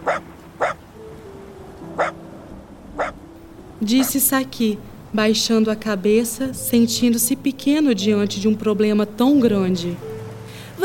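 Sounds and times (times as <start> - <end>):
dog barking in short sharp yaps: 0.0 - 0.8, 2.0 - 2.2, 3.0 - 3.2
speech: 3.8 - 10.1.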